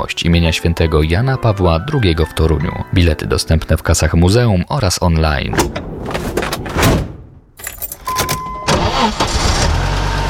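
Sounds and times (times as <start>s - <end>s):
speech: 0.0s - 7.0s
car engine cranking and catching into a low idle: 5.6s - 10.2s
keys jingling: 7.6s - 8.6s.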